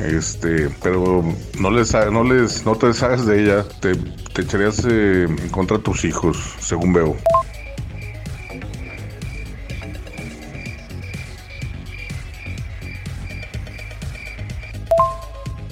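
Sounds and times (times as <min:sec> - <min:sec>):
speech: 0:00.0 - 0:07.4
croaks: 0:07.3 - 0:15.2
crickets chirping: 0:07.3 - 0:15.5.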